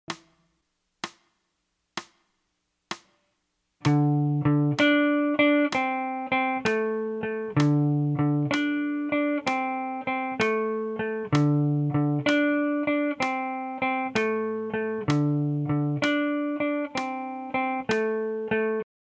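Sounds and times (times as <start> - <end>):
12-bar blues music: 3.8 - 18.7.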